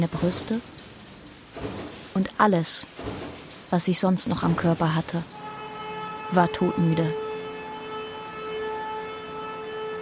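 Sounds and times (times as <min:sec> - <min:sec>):
speech: 0:00.0 - 0:00.8, 0:01.6 - 0:05.4, 0:06.3 - 0:07.2
siren: 0:05.3 - 0:09.9.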